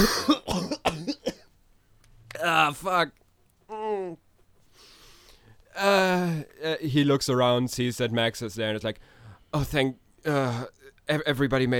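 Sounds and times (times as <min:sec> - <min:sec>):
speech: 0:00.0 - 0:00.4, 0:02.4 - 0:03.2, 0:05.8 - 0:11.7
person imitating a fit of harsh hacking coughs: 0:00.0 - 0:01.5.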